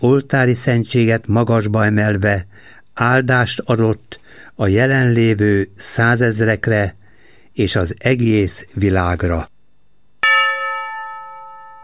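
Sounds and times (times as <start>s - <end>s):
speech: 0.0s - 7.0s, 7.6s - 9.5s
church bell striking: 10.2s - 11.8s.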